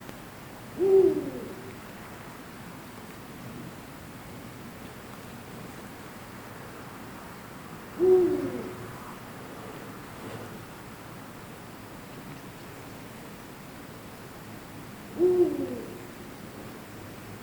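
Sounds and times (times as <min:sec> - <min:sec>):
eagle owl calling in Oberallgaeu: 0:00.8 - 0:01.8, 0:08.0 - 0:08.9, 0:15.2 - 0:16.1.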